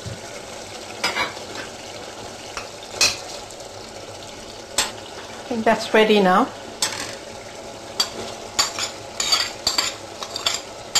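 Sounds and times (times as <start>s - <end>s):
minced meat and softened aubergine with coriander frying in a pan: 0.0s - 10.9s
speech: 5.5s - 6.6s
utensil scraping and clattering against the pan: 8.0s - 10.9s.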